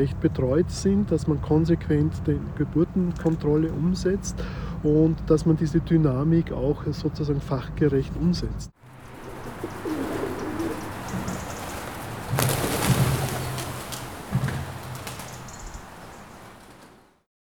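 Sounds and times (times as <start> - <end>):
speech: 0.0 - 8.8
pigeons cooing in a pigeon loft: 8.8 - 17.1
pigeon wing flutters: 8.8 - 17.2.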